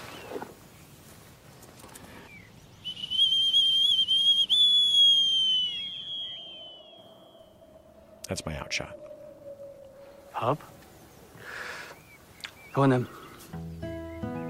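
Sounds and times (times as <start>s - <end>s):
falconer's hawking whistle blown in a shrill steady blast: 2.9s - 10.5s
speech: 8.3s - 9.1s, 10.4s - 10.7s, 12.8s - 13.7s.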